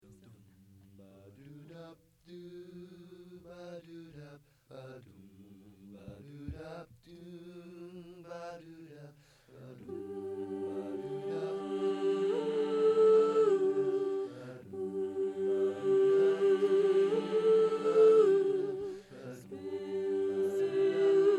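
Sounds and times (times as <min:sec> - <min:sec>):
spin soprano voice: 0:09.8 - 0:21.3.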